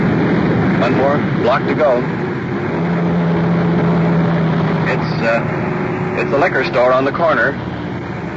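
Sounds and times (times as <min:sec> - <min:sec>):
car engine humming while pulling over to the curb: 0:00.0 - 0:08.3
speech: 0:00.8 - 0:03.3, 0:04.9 - 0:07.8.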